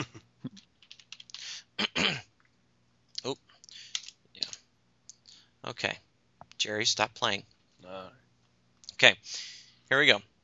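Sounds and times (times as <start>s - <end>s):
typing on a computer keyboard: 0.5s - 1.5s, 3.9s - 4.6s
speech: 5.7s - 6.0s, 6.6s - 8.2s, 9.0s - 10.3s.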